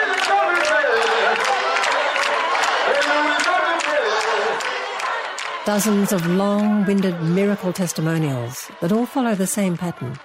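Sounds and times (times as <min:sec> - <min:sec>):
crowd clapping hands in a steady rhythm in a big arena: 0:00.0 - 0:07.4, 0:09.7 - 0:10.2
large crowd singing together in a big arena: 0:00.0 - 0:10.2
speech: 0:05.6 - 0:10.2.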